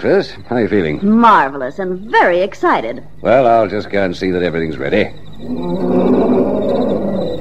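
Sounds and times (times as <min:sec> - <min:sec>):
speech: 0:00.0 - 0:06.0
lion roaring: 0:05.4 - 0:07.3.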